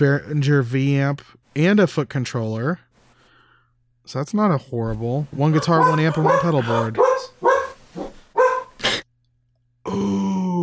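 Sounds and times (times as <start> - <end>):
speech: 0.0 - 2.8, 4.1 - 7.5
dogs barking: 5.3 - 9.0.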